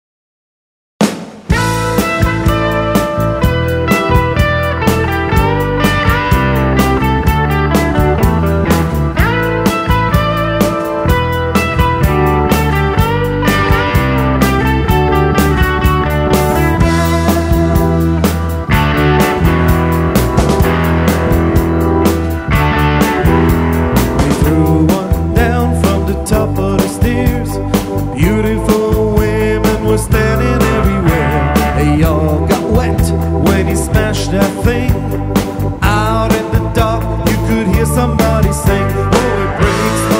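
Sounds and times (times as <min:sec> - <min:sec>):
guitar: 0:01.5 - 0:40.1.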